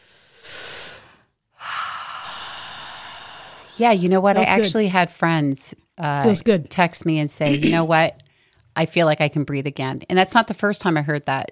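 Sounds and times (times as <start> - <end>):
people taking a deep breath together: 0.0 - 3.9
speech: 3.8 - 8.2, 8.8 - 11.5.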